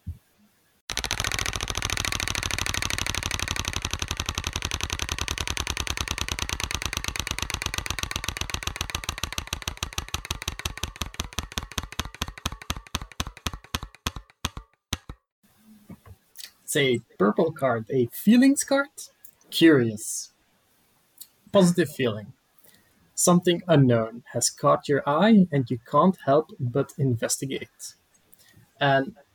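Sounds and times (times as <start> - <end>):
prize wheel spinning with ratcheting clicks: 0.9 - 15.2
speech: 16.7 - 20.3, 21.5 - 22.4, 23.2 - 28.0, 28.8 - 29.2.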